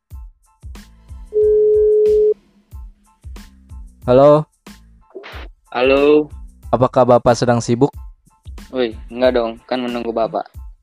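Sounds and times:
punchy rhythmic beat: 0:00.6 - 0:10.8
outgoing phone call ringback tone: 0:01.3 - 0:02.4
speech: 0:04.1 - 0:04.5, 0:05.7 - 0:08.0, 0:08.7 - 0:10.6.

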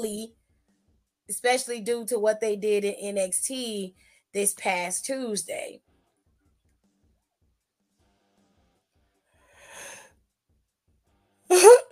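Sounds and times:
speech: 0:00.0 - 0:00.4, 0:01.3 - 0:05.9
soft breathy inhale: 0:09.4 - 0:10.1
sharp loud sneeze: 0:11.5 - 0:11.8.

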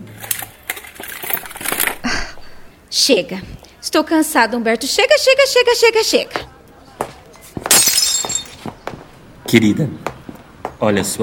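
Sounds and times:
speech: 0:02.9 - 0:06.5, 0:09.5 - 0:10.1, 0:10.8 - 0:11.2
drinking glass shattering while gripped in a hand: 0:07.6 - 0:08.7
drinking glass fragments tinkling: 0:07.7 - 0:08.7.

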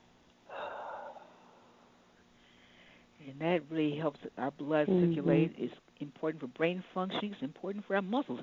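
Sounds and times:
deep airy breath drawn in through the mouth: 0:00.5 - 0:01.8, 0:02.4 - 0:03.1
speech: 0:03.2 - 0:08.4.

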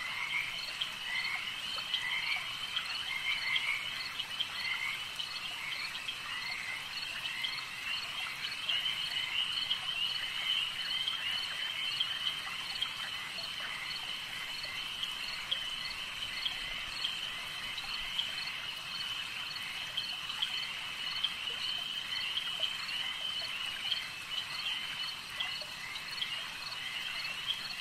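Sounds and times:
dense chorus of frogs in a night swamp: 0:00.0 - 0:27.8.

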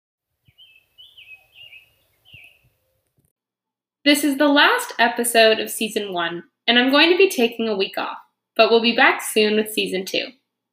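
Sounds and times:
summer tanager singing: 0:00.4 - 0:03.1
speech: 0:04.0 - 0:10.4.

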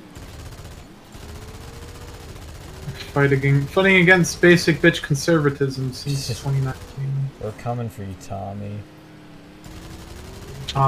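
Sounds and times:
rapid gunfire in a video game: 0:00.0 - 0:07.2, 0:09.6 - 0:10.8
low steady hum: 0:00.0 - 0:10.8
speech: 0:03.1 - 0:09.0.

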